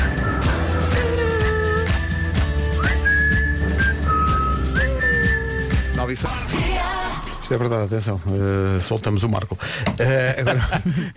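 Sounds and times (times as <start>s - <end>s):
whistled melody: 0.0s - 6.2s
musical backing with percussion: 0.0s - 7.5s
speech: 7.5s - 11.1s
laughter: 10.0s - 11.1s.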